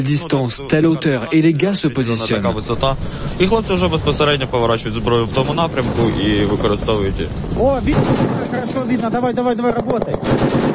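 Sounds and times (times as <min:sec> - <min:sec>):
speech: 0:00.0 - 0:10.7
sustained machine gun fire at a drone at night: 0:07.7 - 0:08.8, 0:10.0 - 0:10.7.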